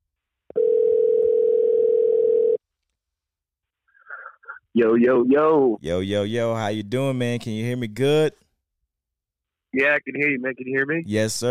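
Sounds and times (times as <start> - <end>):
telephone tone while placing a call: 0.5 - 2.6
speech: 4.8 - 8.4, 9.7 - 11.5.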